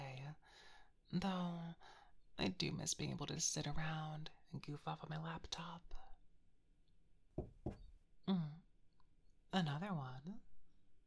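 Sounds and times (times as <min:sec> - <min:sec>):
speech: 0:01.1 - 0:06.0, 0:08.3 - 0:08.6, 0:09.5 - 0:10.5
firm knocks on a door: 0:07.4 - 0:08.0.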